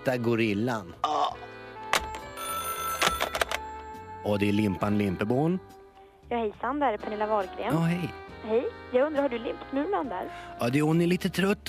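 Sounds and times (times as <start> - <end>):
speech: 0.0 - 1.2, 4.2 - 11.6
telephone ringing after a call is placed: 2.0 - 3.8.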